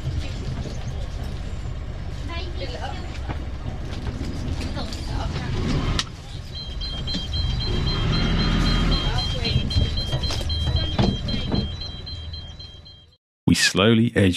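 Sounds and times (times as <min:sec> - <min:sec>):
low engine rumble: 0:00.0 - 0:13.7
boat depth alarm beeping: 0:06.3 - 0:13.2
speech: 0:13.8 - 0:14.3.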